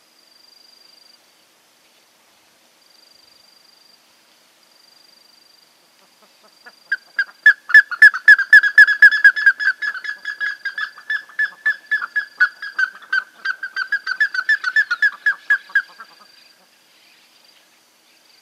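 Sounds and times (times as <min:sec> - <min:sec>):
plumbeous ibis calling with sharp piping whistled notes: 0:06.4 - 0:17.7.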